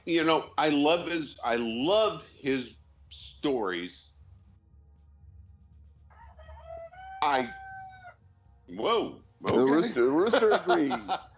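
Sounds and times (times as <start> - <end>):
speech: 0.0 - 4.1, 7.2 - 7.6, 8.7 - 11.3
rooster crowing: 6.1 - 8.2
people chuckling: 9.5 - 11.3.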